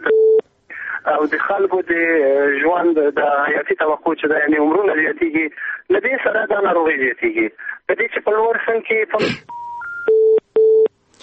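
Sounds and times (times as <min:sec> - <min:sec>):
telephone tones as a call cuts off: 0:00.0 - 0:00.4, 0:09.5 - 0:11.0
speech: 0:01.0 - 0:09.6.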